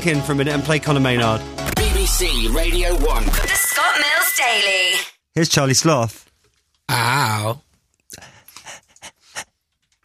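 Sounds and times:
speech: 0:00.0 - 0:06.2, 0:06.9 - 0:07.6
person panting: 0:08.1 - 0:09.6.

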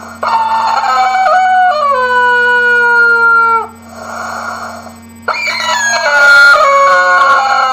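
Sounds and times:
squeezy rubber chicken toy squawking: 0:00.2 - 0:03.7, 0:05.3 - 0:07.7.

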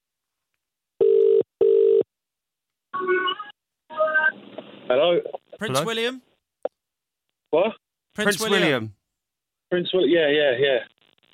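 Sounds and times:
outgoing phone call ringing tone buzzing: 0:01.0 - 0:02.0
speech: 0:04.9 - 0:06.3, 0:07.5 - 0:09.0, 0:09.7 - 0:10.9
wavering voice over the phone line: 0:05.6 - 0:06.2, 0:08.2 - 0:08.9.

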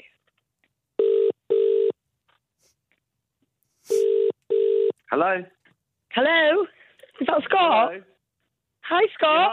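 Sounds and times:
telephone ringback tone while a radio phone-in caller is connected: 0:01.0 - 0:02.0, 0:03.9 - 0:04.9
speech: 0:05.1 - 0:08.1, 0:08.9 - 0:09.5.

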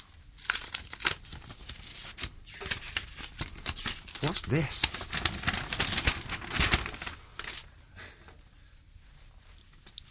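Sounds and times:
paper envelope being opened: 0:00.0 - 0:07.7
speech: 0:04.2 - 0:04.9.

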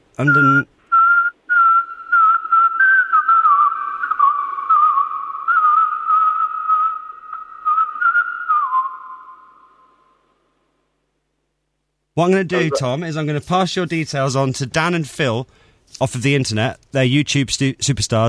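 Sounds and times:
speech: 0:00.2 - 0:00.8, 0:12.2 - 0:18.2
person whistling a bouncy pop tune: 0:00.3 - 0:09.6.

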